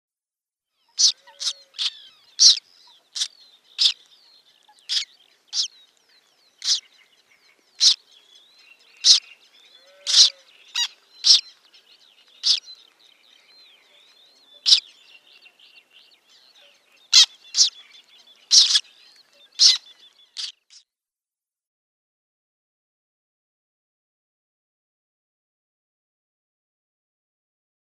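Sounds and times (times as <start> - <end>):
downy Black Tern young calling: 0.8 - 20.8.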